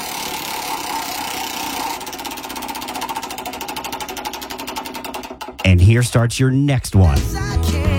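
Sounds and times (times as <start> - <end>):
prize wheel spinning in a game contest, clicker ticking past pegs: 0.0 - 6.1
speech: 5.6 - 7.8.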